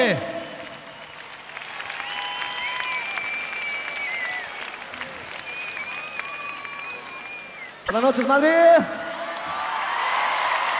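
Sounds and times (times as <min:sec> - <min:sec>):
speech: 0:00.0 - 0:00.3, 0:07.9 - 0:09.0
concert audience applauding a band: 0:00.0 - 0:08.6, 0:09.2 - 0:10.7
high whistles from the crowd: 0:02.0 - 0:04.6, 0:05.4 - 0:07.8.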